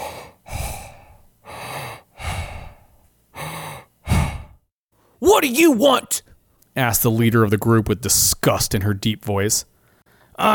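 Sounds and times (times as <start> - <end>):
man breathing heavily through the mouth: 0.0 - 4.7
speech: 5.2 - 9.7, 10.4 - 10.5.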